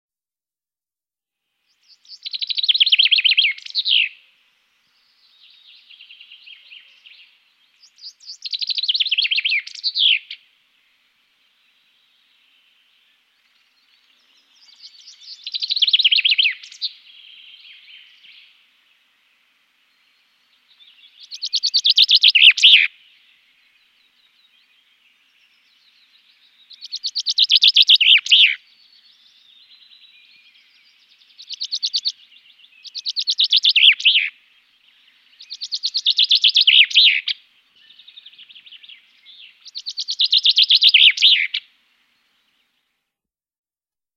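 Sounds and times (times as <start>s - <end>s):
common chaffinch singing: 1.7s - 41.7s.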